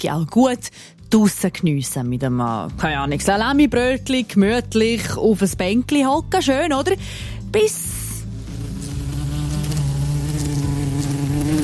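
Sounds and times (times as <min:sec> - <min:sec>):
speech: 0:00.0 - 0:08.0
wasp buzzing while flying around: 0:07.9 - 0:11.6.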